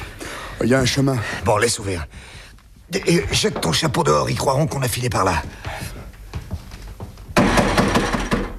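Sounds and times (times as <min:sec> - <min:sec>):
speech: 0:00.6 - 0:05.9
large heavy door panel being shoved open: 0:07.4 - 0:08.5.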